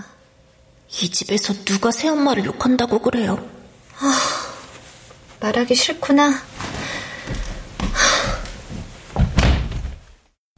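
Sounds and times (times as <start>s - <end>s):
speech: 0.9s - 4.3s, 5.4s - 6.6s
knocking impact: 9.1s - 10.1s
door slamming shut: 9.2s - 10.0s.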